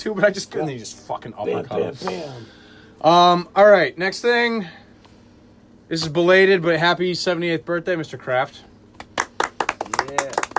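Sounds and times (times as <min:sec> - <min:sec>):
speech: 0:00.0 - 0:04.8, 0:05.9 - 0:08.7
sharp hand claps: 0:08.9 - 0:10.5.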